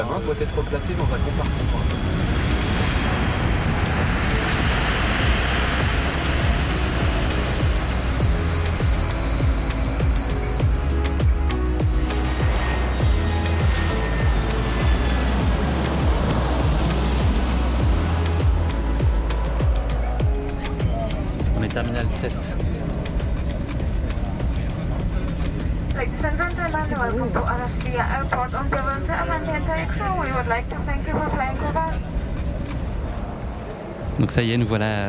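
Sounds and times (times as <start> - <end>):
speech: 0.0 - 2.4, 34.4 - 35.0
airliner engine roar during takeoff: 0.0 - 35.0
rattles and clicks inside an airliner cabin: 20.6 - 33.8.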